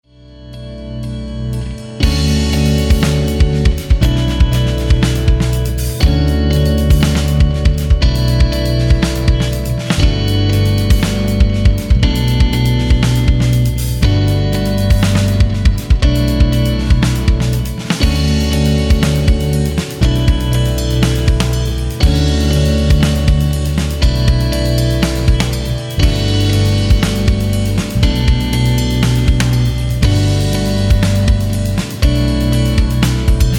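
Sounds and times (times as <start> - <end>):
musical lick over backing track: 0.2 - 33.5.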